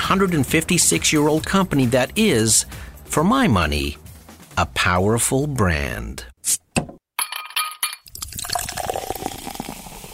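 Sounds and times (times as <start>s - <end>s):
speech: 0.1s - 4.0s, 4.6s - 6.6s
sharp glass clinks: 7.2s - 9.9s
Canada Dry ginger ale pouring fizzily into a glass: 8.1s - 10.1s.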